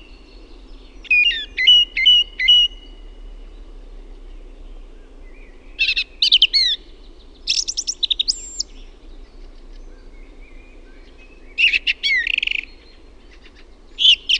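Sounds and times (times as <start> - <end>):
song thrush song of varied chirping and whistled phrases: 0.0 - 3.2, 5.4 - 14.3
low background noise: 0.0 - 14.3.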